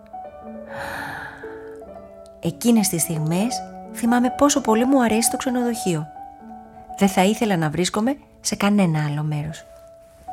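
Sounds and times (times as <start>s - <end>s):
speech: 0.4s - 1.0s, 2.4s - 6.2s, 7.0s - 9.7s
deep breath: 0.7s - 1.8s.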